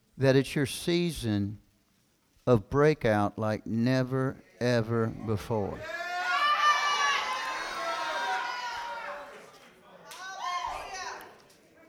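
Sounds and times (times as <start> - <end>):
speech: 0.2 - 1.6, 2.4 - 6.0
audience shouting and cheering during a sermon: 5.8 - 9.4.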